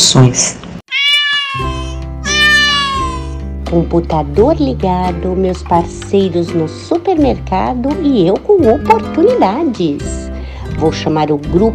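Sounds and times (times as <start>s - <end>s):
speech: 0.1s - 0.6s, 3.7s - 10.2s, 10.8s - 11.7s
cat meowing in an apartment: 0.9s - 3.4s.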